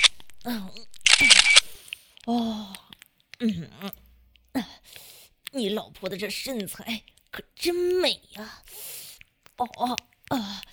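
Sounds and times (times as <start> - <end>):
speech: 0.4 - 1.5, 2.3 - 2.8, 3.4 - 3.7, 5.6 - 8.9, 9.6 - 10.7
camera shutter firing a rapid burst while taking photos: 1.0 - 1.9
short breathy vocal sounds and murmurs: 1.6 - 10.7.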